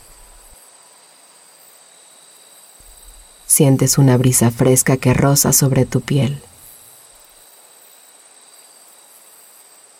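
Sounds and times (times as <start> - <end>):
crickets and other insects chirring in a cornfield on a cool autumn night: 0.0 - 9.9
speech: 3.5 - 6.5.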